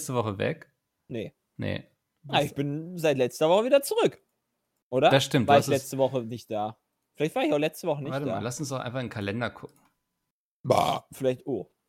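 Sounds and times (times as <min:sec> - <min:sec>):
speech: 0:00.0 - 0:04.3, 0:04.9 - 0:09.8, 0:10.6 - 0:11.8
short low rough burp: 0:10.6 - 0:11.2.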